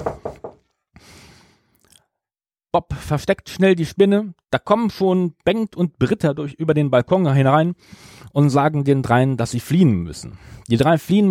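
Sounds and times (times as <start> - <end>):
security guards knocking on a hotel room door: 0.0 - 0.6
speech: 2.8 - 11.3.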